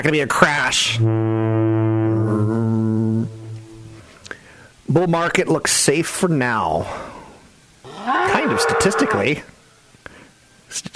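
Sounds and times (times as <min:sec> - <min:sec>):
speech: 0:00.0 - 0:03.4, 0:04.9 - 0:07.1, 0:08.0 - 0:09.6, 0:10.7 - 0:10.9
foghorn blast: 0:00.8 - 0:04.2.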